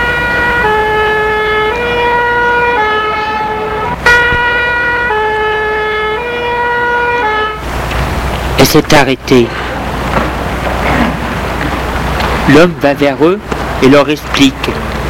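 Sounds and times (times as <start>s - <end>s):
two-tone fire engine siren wailing: 0.0s - 7.7s
traffic rumble: 0.0s - 15.0s
speech: 8.7s - 9.8s, 12.5s - 14.9s.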